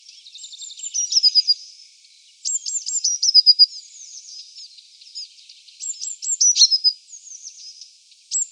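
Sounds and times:
Eurasian blue tit repeating bright high phrases running into a rapid trill: 0:00.0 - 0:08.5.

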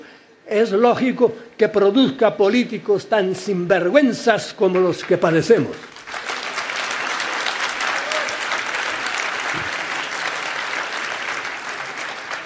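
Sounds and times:
speech: 0:00.5 - 0:05.9
audience applause: 0:05.0 - 0:12.4.

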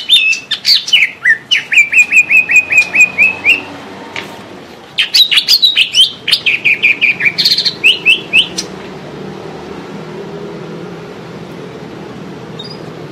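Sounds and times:
greater green leafbird singing: 0:00.0 - 0:03.8, 0:04.9 - 0:08.8, 0:12.6 - 0:12.9.

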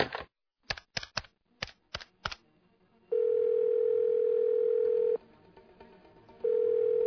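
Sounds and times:
telephone dial tone: 0:03.2 - 0:05.2, 0:06.5 - 0:07.0.

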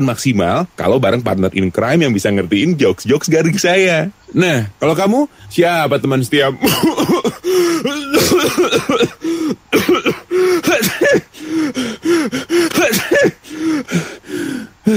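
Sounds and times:
speech: 0:00.0 - 0:10.2
person with flu coughing: 0:06.6 - 0:13.4
gasping breaths of a person with flu: 0:07.4 - 0:08.0, 0:09.1 - 0:14.9.

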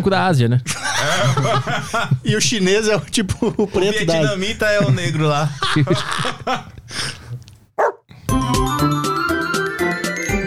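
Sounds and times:
speech: 0:00.0 - 0:07.2
laughter: 0:00.7 - 0:07.1
frightened dogs barking and yipping: 0:07.8 - 0:08.1
music: 0:08.2 - 0:10.4.

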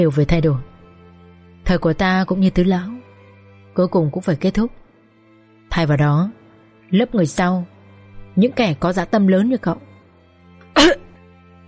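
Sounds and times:
speech: 0:00.0 - 0:00.7, 0:01.7 - 0:03.0, 0:03.8 - 0:04.8, 0:05.8 - 0:07.7, 0:08.4 - 0:09.9
old man coughing harshly: 0:10.8 - 0:11.2.

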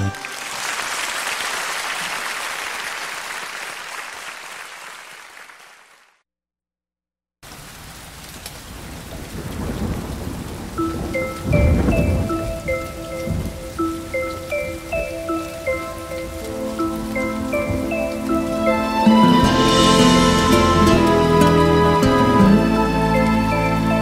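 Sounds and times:
raindrops pattering: 0:00.0 - 0:06.1, 0:07.4 - 0:23.9
gentle melody of repeated bright notes: 0:10.8 - 0:23.9.

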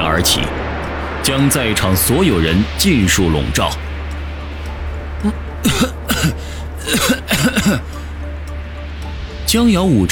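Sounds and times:
steady low hum: 0:00.0 - 0:10.1
speech: 0:00.2 - 0:00.6, 0:01.2 - 0:03.9, 0:05.2 - 0:08.0, 0:09.5 - 0:10.1
person coughing after falling and hurting their lower back: 0:05.2 - 0:08.0
throat-clearing: 0:05.6 - 0:08.0.

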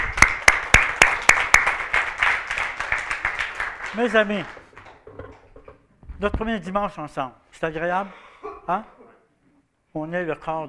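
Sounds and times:
applause at a Sunday church gathering: 0:00.0 - 0:05.0
speech: 0:04.0 - 0:04.6, 0:06.2 - 0:09.0, 0:10.0 - 0:10.6.

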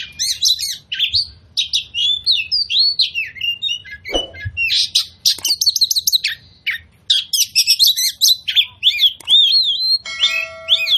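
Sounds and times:
Oriental magpie-robin singing varied song of short whistles and sharp chips: 0:00.0 - 0:10.9
brief thud: 0:04.1 - 0:04.6.

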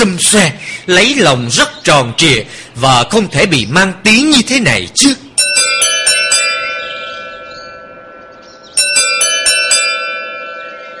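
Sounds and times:
speech: 0:00.1 - 0:05.2
doorbell chime ringing at a house: 0:05.4 - 0:10.9.

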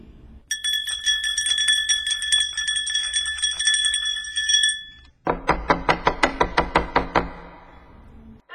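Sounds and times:
theatre bell ringing before the curtain rises: 0:00.5 - 0:05.2
sharp knocks: 0:05.2 - 0:07.9.

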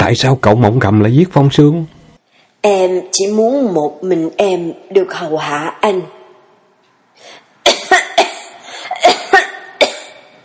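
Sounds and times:
speech: 0:00.1 - 0:02.0, 0:02.6 - 0:06.2
person coughing blood up from the lungs: 0:07.7 - 0:10.3.

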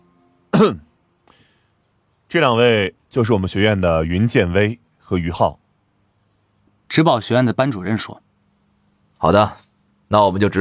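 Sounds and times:
teacher clearing their throat: 0:00.6 - 0:00.9
speech: 0:00.6 - 0:01.4, 0:02.3 - 0:05.6, 0:06.9 - 0:08.3, 0:09.2 - 0:10.5.

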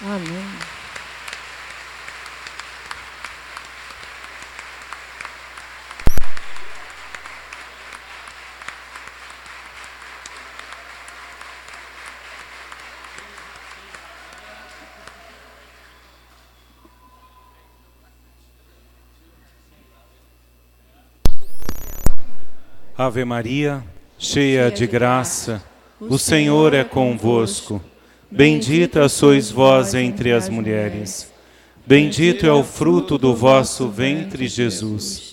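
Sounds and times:
congregation applauding at a Catholic prayer gathering: 0:00.0 - 0:16.5
speech: 0:00.1 - 0:00.8, 0:23.0 - 0:31.3, 0:31.9 - 0:35.3
abrupt burst of noise: 0:06.0 - 0:07.4, 0:21.2 - 0:24.1.

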